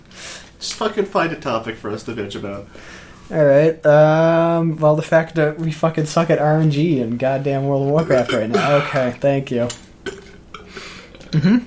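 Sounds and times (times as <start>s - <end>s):
speech: 0.8s - 10.2s, 11.3s - 11.6s
soft breathy noise: 2.7s - 3.3s
short strained croaky burp: 8.2s - 9.2s.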